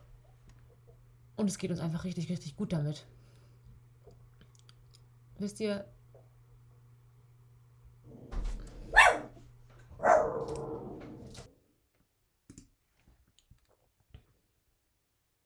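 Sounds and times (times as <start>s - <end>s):
speech: 1.4s - 3.2s, 5.4s - 6.0s
excited dog barking: 8.9s - 9.4s, 10.0s - 10.8s.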